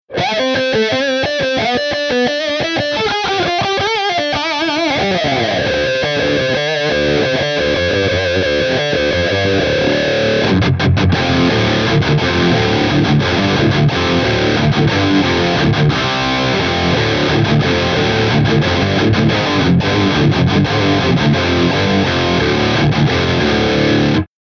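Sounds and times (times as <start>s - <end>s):
Gibson Les Paul electric guitar with Vox wah through Bogner Ecstasy amp and 412 cab: 0.1s - 24.3s.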